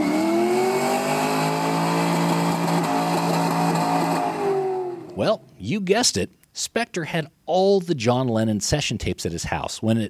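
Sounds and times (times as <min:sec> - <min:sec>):
car engine revving and speeding away: 0:00.0 - 0:05.6
speech: 0:05.2 - 0:10.0.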